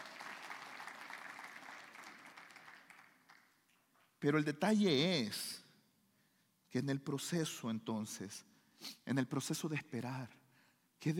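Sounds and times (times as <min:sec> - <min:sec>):
audience clapping: 0:00.0 - 0:04.0
speech: 0:04.2 - 0:05.6, 0:06.7 - 0:10.4, 0:11.0 - 0:11.1.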